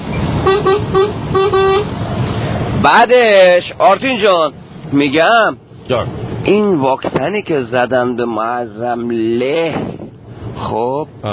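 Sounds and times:
car horn beeps: 0.0s - 2.0s
low road noise rumble: 0.0s - 11.3s
speech: 2.8s - 10.0s, 10.6s - 11.3s.

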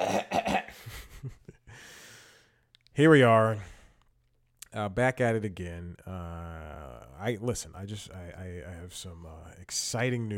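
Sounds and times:
person clearing throat: 0.0s - 0.8s
speech: 3.0s - 3.7s, 4.7s - 10.3s.

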